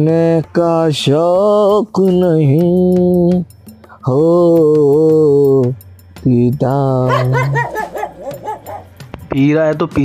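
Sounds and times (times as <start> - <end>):
speech: 0.0 - 8.4, 9.3 - 10.0
dogs barking and yelping: 7.0 - 9.1.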